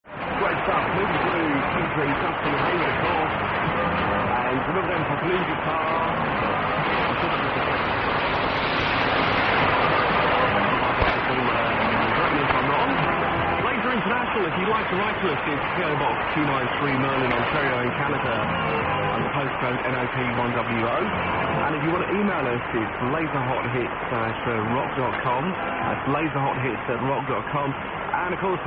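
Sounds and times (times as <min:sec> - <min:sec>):
shortwave radio signal on 6285 kHz: 0:00.1 - 0:28.6.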